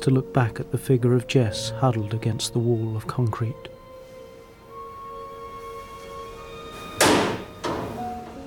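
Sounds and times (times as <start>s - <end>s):
speech: 0.0s - 3.7s
metal bunker door settling with a soft clunk: 6.7s - 8.4s
heavy metal door of a concrete bunker slamming shut: 6.8s - 8.4s.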